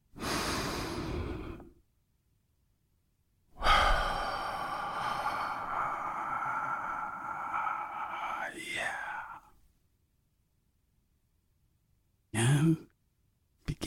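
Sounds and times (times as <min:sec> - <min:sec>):
deep human breath: 0:00.1 - 0:01.8, 0:03.6 - 0:09.6.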